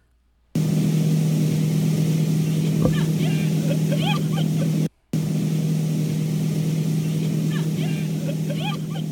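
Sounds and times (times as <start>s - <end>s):
motorboat engine droning while towing a water skier: 0.6s - 9.1s
laughter: 2.9s - 4.9s, 7.1s - 9.1s.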